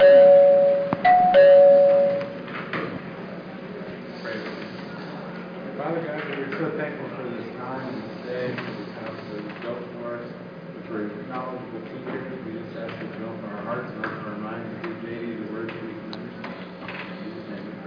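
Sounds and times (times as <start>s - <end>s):
bell ringing with a short clear two-part chime: 0.0s - 2.4s
quiet voices murmuring in a room: 2.9s - 17.8s.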